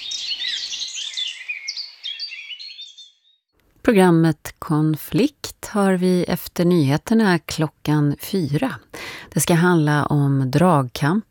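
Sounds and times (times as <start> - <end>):
dense birdsong with chirps and warbling trills: 0.0 - 3.5
speech: 3.9 - 11.2.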